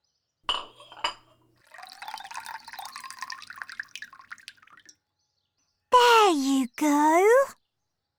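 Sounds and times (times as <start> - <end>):
bowl clinking as it is set down for a cat: 0.5 - 4.9
water pouring into a cat bowl: 1.6 - 4.9
speech: 6.3 - 7.6.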